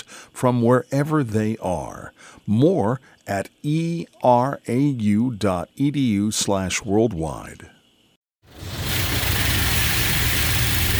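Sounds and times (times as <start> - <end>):
speech: 0.4 - 7.8
car wash spraying soapy water over a car windshield in Central Florida: 8.5 - 10.9
low rumble: 8.5 - 10.9.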